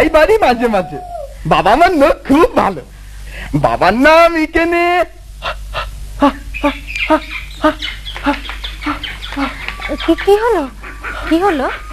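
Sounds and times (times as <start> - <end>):
speech: 0.0 - 11.9
large flock of ducks calling at midday: 6.6 - 11.9.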